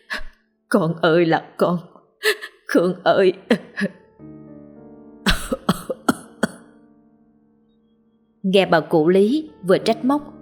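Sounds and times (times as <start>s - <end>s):
speech: 0.7s - 4.3s, 8.5s - 10.3s
old man coughing hard: 5.3s - 6.7s.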